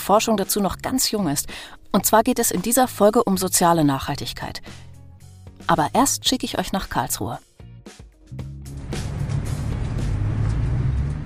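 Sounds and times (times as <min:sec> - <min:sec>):
speech: 0:00.0 - 0:04.9, 0:05.7 - 0:08.5
heavy vehicle rumbling past on a busy road: 0:08.5 - 0:11.2
broadband traffic roar: 0:08.8 - 0:11.2.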